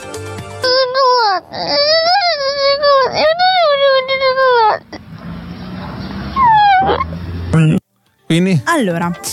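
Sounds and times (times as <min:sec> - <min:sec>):
baby crying and whimpering: 0:00.5 - 0:05.1, 0:06.4 - 0:07.1
speech: 0:01.5 - 0:02.0, 0:08.3 - 0:09.3.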